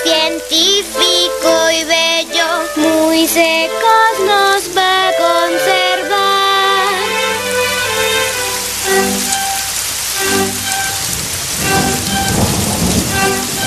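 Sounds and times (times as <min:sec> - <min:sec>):
musical backing of sustained tones: 0:00.0 - 0:13.6
steady heavy rain: 0:00.0 - 0:13.6
low thunder-like rumbles: 0:10.1 - 0:13.6.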